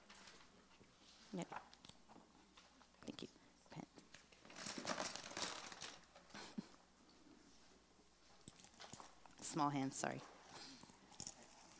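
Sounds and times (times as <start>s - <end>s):
sheets of paper rustling as they are handed out: 0.1s - 0.6s, 4.4s - 6.2s
speech: 1.3s - 1.7s, 9.6s - 10.4s.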